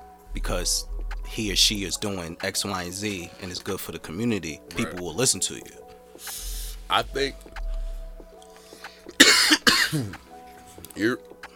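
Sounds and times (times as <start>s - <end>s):
speech: 0.4s - 7.6s, 9.9s - 10.2s, 11.0s - 11.3s
person coughing: 9.2s - 10.2s.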